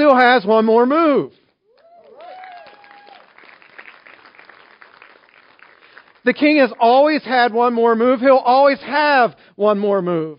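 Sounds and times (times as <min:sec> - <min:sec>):
speech: 0:00.1 - 0:01.4, 0:06.2 - 0:10.3
person whooping: 0:01.7 - 0:03.4
crowd clapping and cheering: 0:01.7 - 0:06.9.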